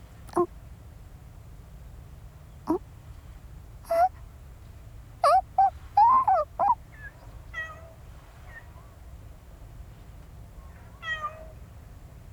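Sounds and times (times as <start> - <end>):
cat meowing: 3.9 - 4.1, 5.2 - 6.8, 11.0 - 11.5.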